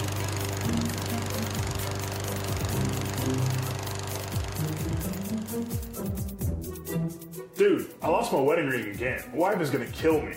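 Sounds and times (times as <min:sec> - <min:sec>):
self-propelled lawnmower gasoline engine idling and revving: 0:00.0 - 0:06.3
speech: 0:07.6 - 0:10.3.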